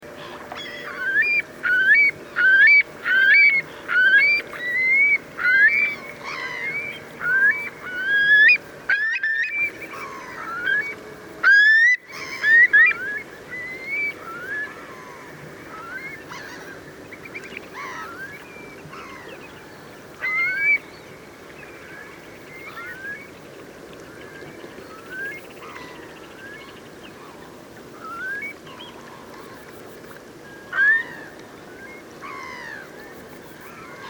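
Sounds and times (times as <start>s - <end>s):
Eurasian curlew flight call: 0.1s - 34.0s.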